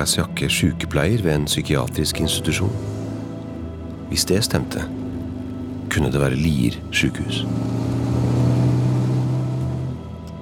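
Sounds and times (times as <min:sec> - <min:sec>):
speech: 0:00.0 - 0:03.0, 0:04.1 - 0:05.0, 0:05.9 - 0:08.2
motorcycle engine droning behind a car driving along Lierstranda: 0:02.0 - 0:10.4.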